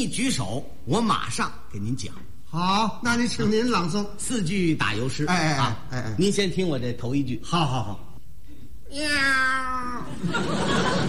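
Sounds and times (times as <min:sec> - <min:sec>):
speech: 0:00.0 - 0:08.0, 0:08.9 - 0:11.0
stage performer's voice imitating a cat yowl: 0:08.9 - 0:10.1
audience laughter and noise: 0:10.1 - 0:11.0.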